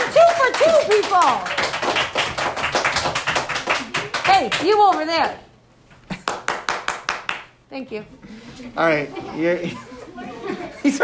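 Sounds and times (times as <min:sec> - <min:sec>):
single person clapping: 0:00.0 - 0:05.4, 0:06.1 - 0:07.5
speech: 0:01.0 - 0:01.6, 0:04.4 - 0:05.5, 0:07.7 - 0:09.9, 0:10.5 - 0:11.0
laughter: 0:08.9 - 0:11.0.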